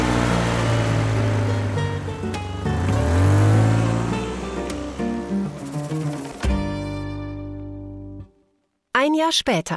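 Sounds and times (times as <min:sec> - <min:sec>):
car engine revving as the car pulls off: 0:00.0 - 0:06.6
speech: 0:09.1 - 0:09.7.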